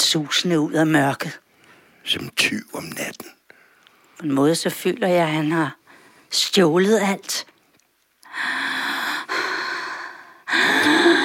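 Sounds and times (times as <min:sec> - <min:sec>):
speech: 0:00.1 - 0:01.4, 0:02.0 - 0:03.4, 0:04.2 - 0:07.5, 0:08.4 - 0:08.7
person breathing heavily and noisily: 0:08.3 - 0:11.2.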